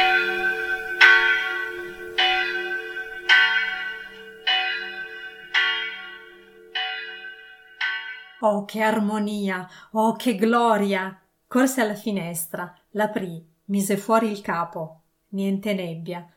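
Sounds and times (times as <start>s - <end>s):
church bells ringing joyful peals: 0.0s - 8.4s
speech: 8.4s - 16.3s.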